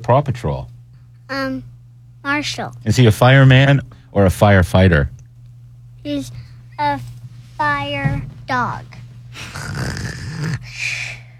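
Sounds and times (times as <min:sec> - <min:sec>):
speech: 0:00.0 - 0:00.7, 0:01.3 - 0:05.2, 0:06.0 - 0:11.0
child pretending to snore: 0:09.4 - 0:11.3.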